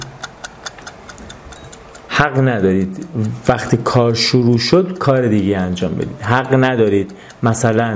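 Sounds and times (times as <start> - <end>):
mechanical Pomodoro timer ticking: 0.0 - 7.9
speech: 2.2 - 7.9.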